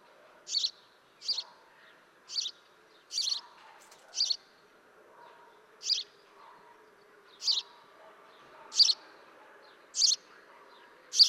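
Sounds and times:
steady background noise: 0:00.0 - 0:11.2
House sparrow chirping: 0:00.4 - 0:04.5, 0:05.8 - 0:06.2, 0:07.3 - 0:07.8, 0:08.4 - 0:09.2, 0:09.8 - 0:10.3.

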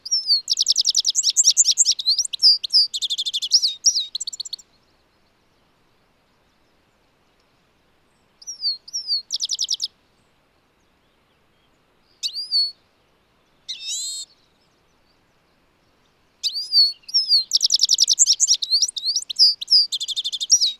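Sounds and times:
European goldfinch Carduelis carduelis twittering and buzzy trills: 0:00.1 - 0:04.6, 0:08.4 - 0:09.9, 0:16.4 - 0:20.7.

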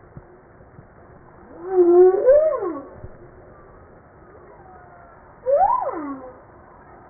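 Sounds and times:
humpback whale song units: 0:01.4 - 0:03.6, 0:04.4 - 0:07.0.

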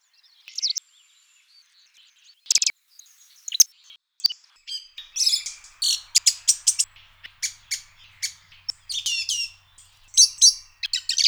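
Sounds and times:
bird song chirps: 0:04.7 - 0:11.2.

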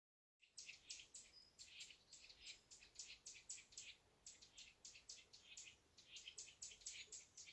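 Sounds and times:
Eurasian nuthatch Sitta europaea giving sharp scratchy high chips: 0:00.4 - 0:07.5.

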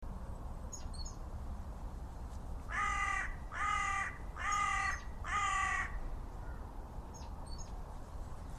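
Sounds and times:
low rumbling background noise: 0:00.0 - 0:08.5
Carrion crow Corvus corone cawing: 0:02.7 - 0:06.6.

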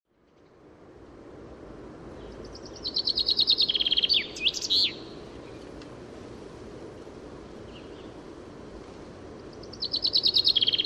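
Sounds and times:
Common chaffinch Fringilla coelebs singing a rapid descending rattle with end flourish: 0:02.1 - 0:05.8, 0:07.5 - 0:08.7, 0:09.3 - 0:10.8.

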